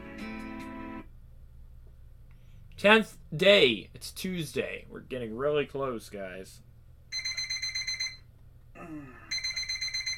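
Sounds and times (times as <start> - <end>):
speech: 2.8 - 6.6, 8.8 - 9.2
alarm clock ringing with shrill pulsing beep: 7.1 - 8.2, 9.3 - 10.1.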